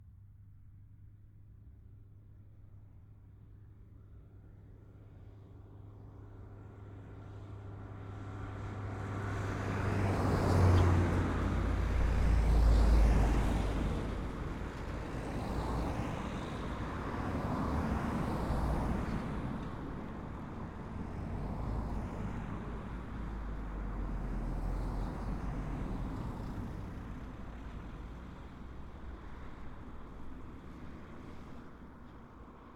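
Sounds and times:
cars passing by at moderate speed on a rural road: 7.6s - 32.7s.

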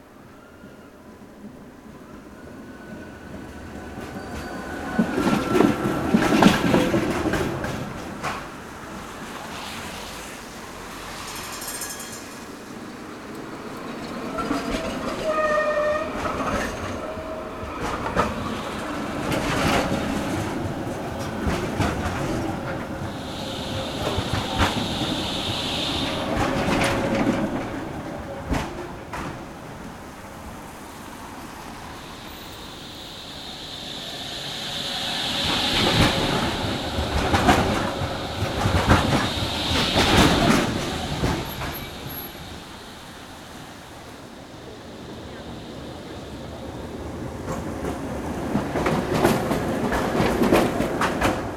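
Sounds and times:
tram traffic: 0.0s - 51.5s.

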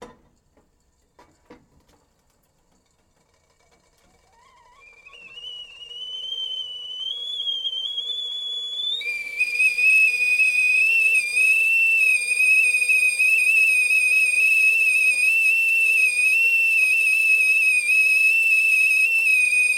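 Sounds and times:
kettle whistling with steam surge: 4.3s - 19.7s.

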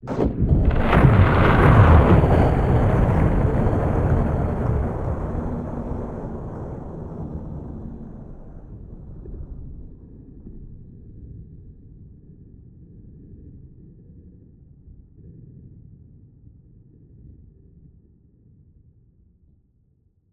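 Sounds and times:
low planet explosion: 0.0s - 11.9s.

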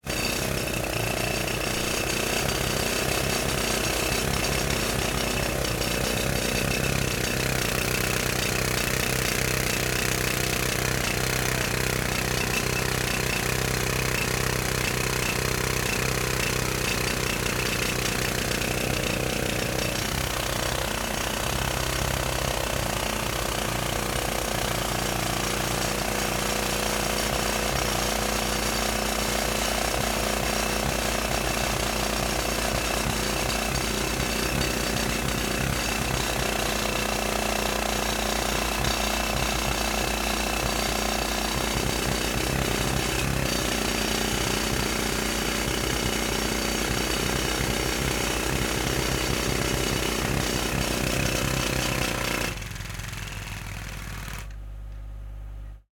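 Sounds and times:
construction jackhammer drilling a concrete wall: 0.0s - 54.6s.

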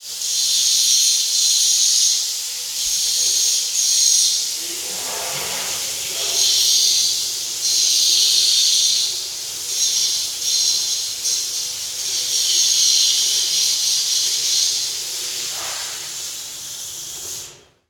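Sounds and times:
industrial steel welding machine: 0.1s - 17.7s
industrial steel grinding machine: 4.5s - 14.9s.

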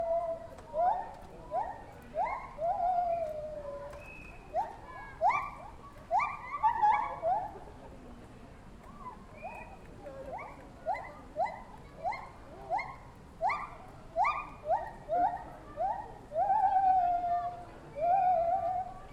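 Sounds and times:
white-handed gibbon calls with wails and hoots: 0.0s - 7.6s, 10.3s - 19.1s
zoo ambience: 0.0s - 8.1s, 8.8s - 19.1s.

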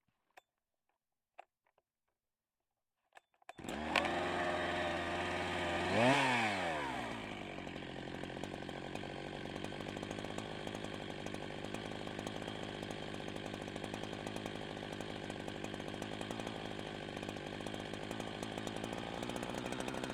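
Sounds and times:
large chainsaw starting and running at steady RPM, exhaust: 3.5s - 20.1s.

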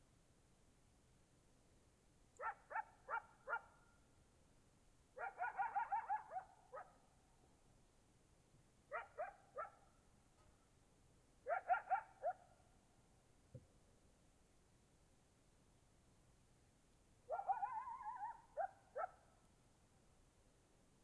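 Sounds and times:
coyote yipping and yelping in Oregon: 2.4s - 3.7s, 5.2s - 6.9s, 8.9s - 9.8s, 11.5s - 12.5s, 17.3s - 19.2s.

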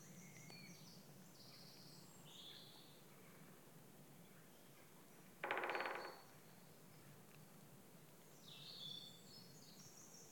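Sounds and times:
faint high bird calls in woodland: 5.4s - 6.3s
woodpecker drumming with rapid wooden knocks: 5.4s - 6.3s.

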